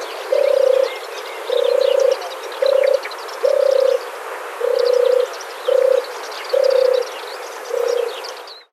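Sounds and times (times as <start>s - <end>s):
small birds chirping: 0.0s - 8.7s
European turtle dove purring: 0.2s - 7.1s, 7.7s - 8.2s.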